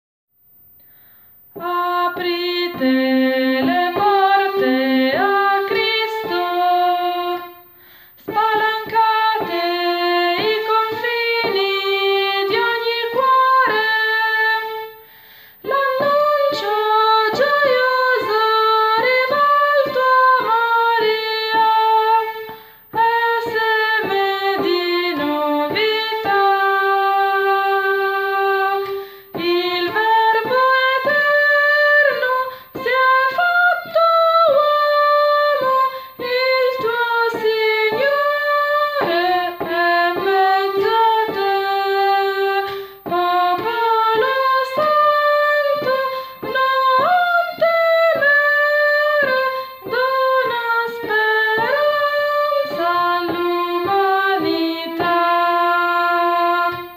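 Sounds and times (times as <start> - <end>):
soprano voices: 1.5 - 56.9.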